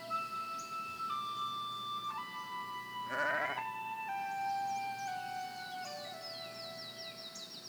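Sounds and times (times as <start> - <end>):
soft sustained musical tones: 0.0 - 7.6
sheep bleating: 3.1 - 3.8.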